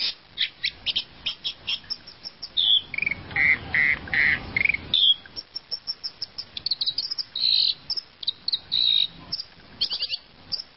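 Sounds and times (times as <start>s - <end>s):
bird calling: 0.0s - 10.7s.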